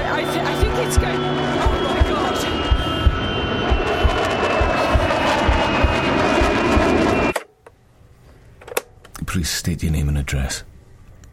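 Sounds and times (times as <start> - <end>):
rhythmic low thumps: 0.0 - 7.3
aircraft engine roaring with high whine as plane descends too fast: 0.0 - 7.4
speech: 9.4 - 10.7.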